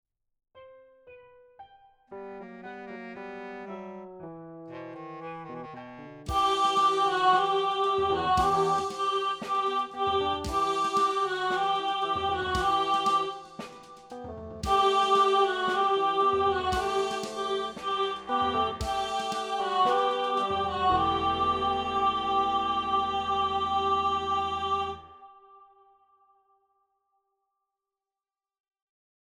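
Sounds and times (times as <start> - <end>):
soprano and alto singing in rehearsal: 4.7 - 25.4.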